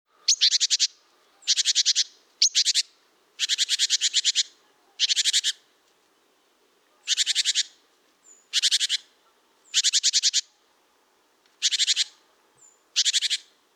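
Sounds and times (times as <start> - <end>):
great tit Parus major scolding calls: 0.3 - 5.6, 7.1 - 7.7, 8.5 - 9.0, 9.7 - 10.5, 11.6 - 12.1, 13.0 - 13.5.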